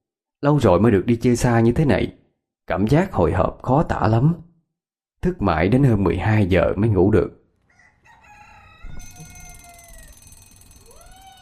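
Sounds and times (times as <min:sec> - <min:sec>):
speech: 0:00.4 - 0:04.5, 0:05.2 - 0:07.4
alarm clock ringing with electronic tones: 0:08.9 - 0:11.4.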